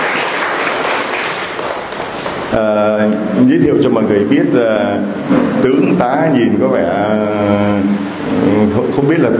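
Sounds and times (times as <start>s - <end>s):
crowd applauding: 0.0s - 2.5s
speech: 2.5s - 9.3s.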